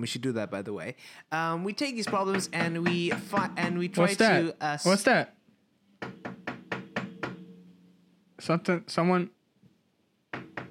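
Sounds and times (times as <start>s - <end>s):
speech: 0.0s - 5.4s, 6.0s - 6.2s, 8.4s - 9.4s
knocking on a door: 2.0s - 4.3s, 6.0s - 7.5s, 10.3s - 10.6s
person calling out: 3.3s - 5.1s.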